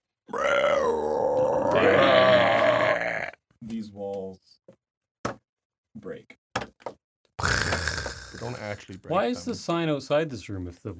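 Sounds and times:
deep guttural monster roar sound effect: 0.3 - 3.4, 7.4 - 8.8
speech: 6.0 - 6.4, 8.4 - 10.9.

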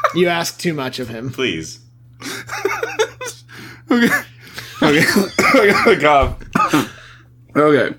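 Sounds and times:
laughter: 0.0 - 0.3, 2.2 - 7.0
steady low hum: 0.0 - 7.9
speech: 0.1 - 2.3, 3.9 - 4.3, 4.9 - 6.9, 7.6 - 7.9
person coughing: 5.0 - 7.0.

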